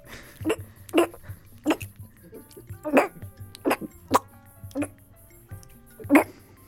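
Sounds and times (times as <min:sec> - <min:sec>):
person imitating a cat coughing up a hairball: 0:00.2 - 0:05.0, 0:06.0 - 0:06.5.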